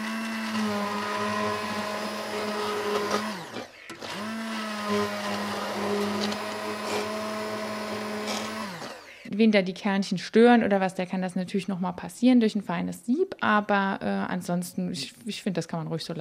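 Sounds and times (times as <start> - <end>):
blender pureeing strawberries with sugar: 0.0 - 9.3
speech: 9.4 - 16.1.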